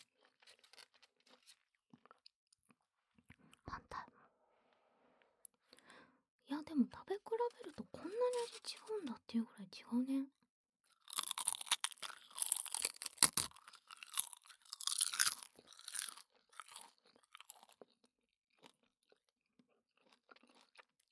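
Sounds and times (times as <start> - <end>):
crunching dried nori seaweed: 0.0 - 1.6, 11.0 - 18.0
speech: 6.8 - 10.4.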